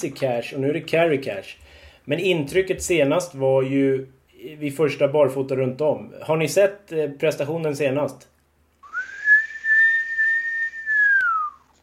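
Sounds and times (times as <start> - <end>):
speech: 0.0 - 8.3
single sustained human whistle: 8.8 - 11.7.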